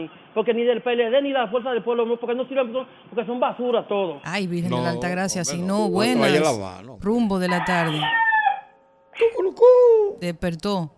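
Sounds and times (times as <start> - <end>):
speech: 0.0 - 8.2, 9.2 - 10.9
rooster crowing: 7.4 - 8.8.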